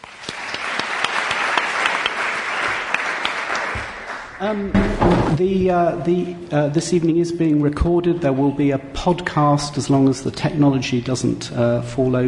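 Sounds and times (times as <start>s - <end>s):
room full of people applauding for a panel: 0.0s - 4.7s
speech: 4.4s - 12.2s.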